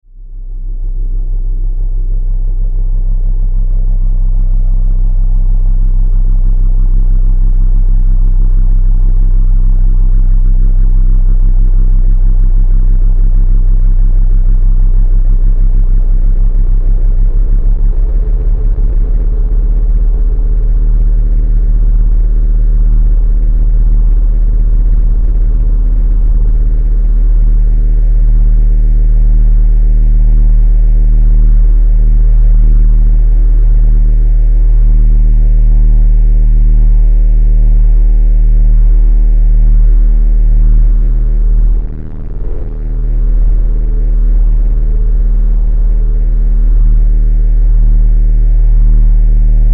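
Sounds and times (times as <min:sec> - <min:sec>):
dark distorted bass drone: 0:00.0 - 0:49.7
static noise: 0:13.8 - 0:49.7.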